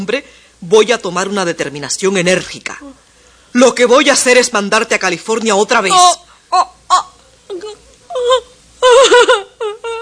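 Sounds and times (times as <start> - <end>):
speech: 0.0 - 6.7, 8.2 - 9.5
woman crying and moaning in a dramatic scene: 5.9 - 10.0.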